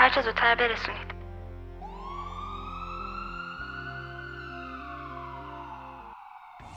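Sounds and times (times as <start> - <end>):
speech: 0.1 - 1.1
ambulance siren wailing: 1.6 - 6.7.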